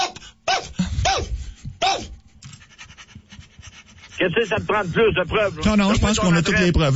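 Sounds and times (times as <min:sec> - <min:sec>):
dog barking: 0:00.0 - 0:02.1
dog panting: 0:02.4 - 0:05.8
speech: 0:04.2 - 0:06.9.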